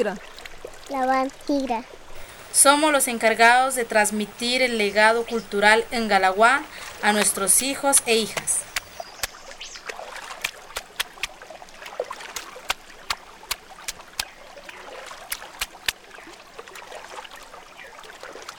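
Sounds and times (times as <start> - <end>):
speech: 0.0 - 8.7
small splashes: 0.0 - 18.5
stream water flowing: 0.0 - 18.5
sharp clicks: 7.2 - 9.4, 10.5 - 11.3.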